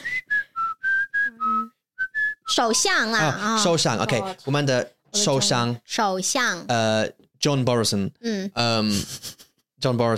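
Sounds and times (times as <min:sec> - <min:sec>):
person whistling a tune: 0:00.0 - 0:02.6
speech: 0:02.5 - 0:10.1.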